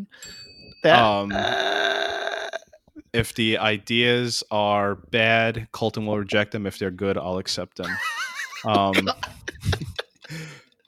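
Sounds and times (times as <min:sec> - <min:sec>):
single bright chime from a little bell: 0:00.1 - 0:01.4
speech: 0:00.1 - 0:02.1, 0:03.1 - 0:10.6
laughter: 0:07.8 - 0:10.6.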